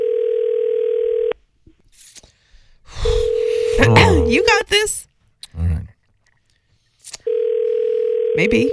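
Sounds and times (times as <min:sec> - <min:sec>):
telephone dial tone while placing a call: 0:00.0 - 0:01.4, 0:07.3 - 0:08.7
speech: 0:03.8 - 0:05.0, 0:08.4 - 0:08.7.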